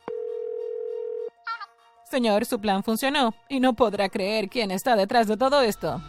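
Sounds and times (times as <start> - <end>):
telephone dial tone: 0.0 - 1.3
speech: 2.1 - 6.0.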